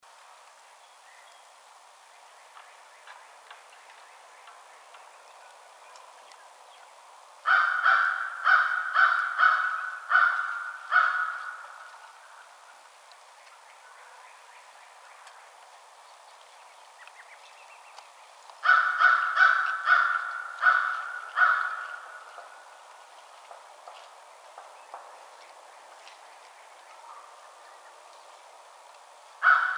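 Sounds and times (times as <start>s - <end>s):
American crow calling: 7.5s - 12.5s, 18.6s - 22.8s, 29.4s - 29.7s.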